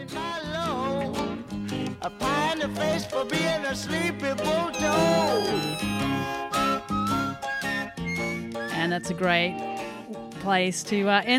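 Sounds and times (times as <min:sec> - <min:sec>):
upbeat pop backing track with bright pulsing chords: 0:00.0 - 0:08.8
speech: 0:02.0 - 0:06.5, 0:08.9 - 0:09.7, 0:10.4 - 0:11.3
whistled melody: 0:04.5 - 0:09.3.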